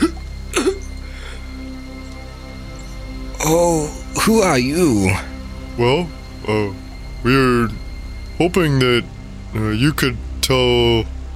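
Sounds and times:
person voicing an old man's raspy coughs: 0.0s - 0.9s
speech: 3.4s - 7.8s, 8.4s - 11.1s.

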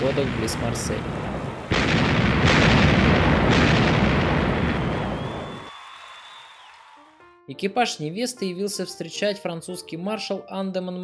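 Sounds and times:
speech: 0.0s - 2.0s, 7.5s - 11.0s
cannon fire in a salute: 0.0s - 5.6s.

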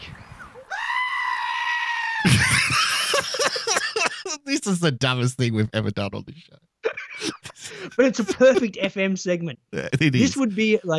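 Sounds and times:
goat screaming: 0.7s - 2.3s
laughter: 2.2s - 4.5s, 6.8s - 8.9s, 9.8s - 10.8s
speech: 4.5s - 10.9s.

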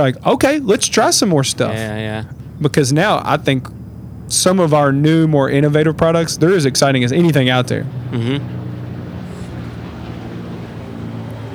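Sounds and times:
speech: 0.0s - 8.6s
Black Hawk helicopter flying overhead: 0.0s - 11.5s
laughter: 0.0s - 11.5s.

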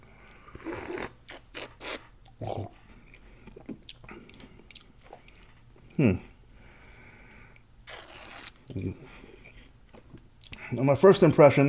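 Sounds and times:
slurping and sipping deep ruby red wine while tasting: 0.5s - 4.0s
speech: 2.4s - 2.8s, 6.0s - 6.3s, 10.7s - 11.6s.

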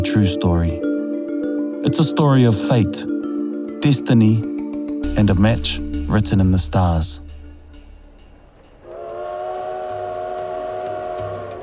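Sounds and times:
speech: 0.0s - 0.9s, 1.8s - 3.2s, 3.8s - 4.5s, 5.2s - 7.2s
low rail rumble of a train at a station: 5.2s - 11.6s
train horn blaring at a station: 8.8s - 11.6s.

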